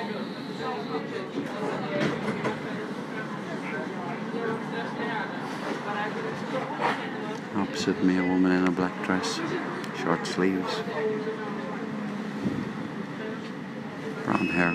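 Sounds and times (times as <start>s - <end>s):
indistinct murmuring voices of tram passengers: 0.0s - 14.7s
tram running on rails heard from the back of the car: 0.0s - 14.7s
speech: 0.9s - 2.3s, 7.6s - 11.4s, 14.4s - 14.7s.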